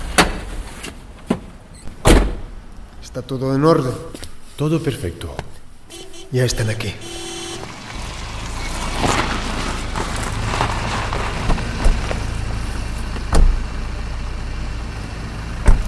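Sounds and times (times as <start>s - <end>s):
sharp clunks and thumps: 0.0s - 2.6s, 11.4s - 12.3s, 13.2s - 13.6s, 15.6s - 15.8s
vehicle engines rumbling: 0.0s - 15.8s
speech: 3.1s - 5.5s, 6.3s - 7.2s.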